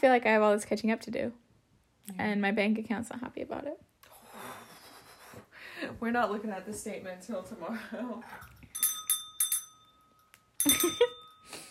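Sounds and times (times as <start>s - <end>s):
speech: 0.0s - 1.4s, 2.1s - 4.6s, 5.8s - 8.5s, 10.6s - 11.2s
small bell being struck: 8.4s - 11.6s.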